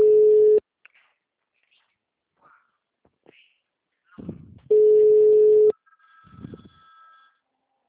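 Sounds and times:
telephone ringing tone on a call line: 0.0s - 0.6s, 4.7s - 7.4s.

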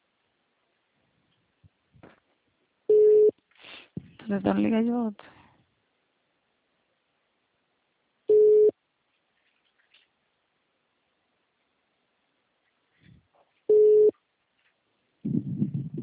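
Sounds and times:
telephone busy tone after a dropped call: 2.9s - 3.3s, 8.3s - 8.7s, 13.7s - 14.1s
speech: 4.3s - 5.4s.

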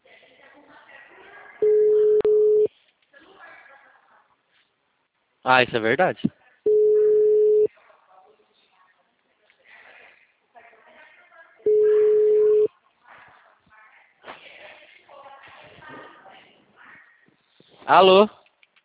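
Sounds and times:
telephone line tone after a dropped call: 1.6s - 2.7s, 6.7s - 7.7s, 11.7s - 12.7s
speech: 5.4s - 6.4s, 17.9s - 18.4s.

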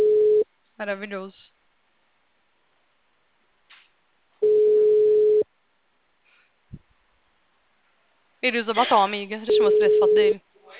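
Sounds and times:
telephone ringback tone while a call is being placed: 0.0s - 0.4s, 4.4s - 5.4s, 9.5s - 10.3s
speech: 0.8s - 1.6s, 8.4s - 10.7s.

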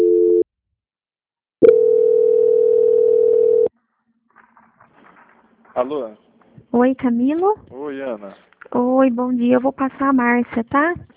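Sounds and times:
telephone tones during a call transfer: 0.0s - 0.4s, 1.6s - 3.7s
speech: 5.8s - 11.1s.

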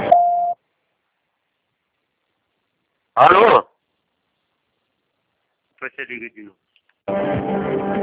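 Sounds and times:
voicemail beep tone: 0.1s - 0.6s
speech: 3.2s - 3.7s, 6.0s - 8.0s.

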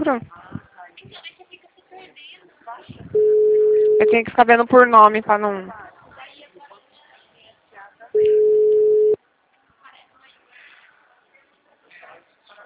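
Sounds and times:
people talking quietly: 0.0s - 4.5s, 5.4s - 12.6s
speech: 0.1s - 0.4s, 4.0s - 5.8s
phone line ringing unanswered: 3.2s - 4.3s, 8.2s - 9.2s.

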